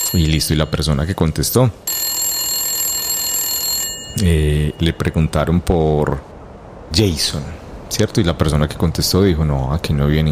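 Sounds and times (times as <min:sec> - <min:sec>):
telephone bell ringing: 0:00.0 - 0:01.3, 0:01.9 - 0:05.1
speech: 0:00.1 - 0:01.9, 0:04.2 - 0:06.3, 0:06.9 - 0:10.3.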